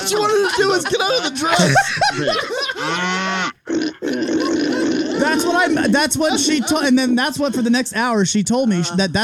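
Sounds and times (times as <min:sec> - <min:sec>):
laughter: 0:00.0 - 0:09.2
speech: 0:00.1 - 0:03.5, 0:05.6 - 0:09.2
person imitating pig grunts and snorts: 0:01.5 - 0:01.9, 0:02.8 - 0:06.5.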